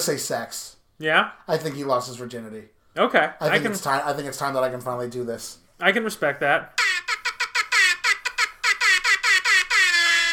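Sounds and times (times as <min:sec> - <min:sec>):
speech: 0:00.0 - 0:06.9
air horn sound effect blasts: 0:06.8 - 0:10.3.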